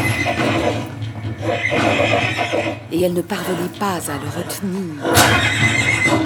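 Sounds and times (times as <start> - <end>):
horse neighing in a long shaky whinny: 0.0 - 2.9, 4.3 - 6.2
speech: 3.0 - 6.2.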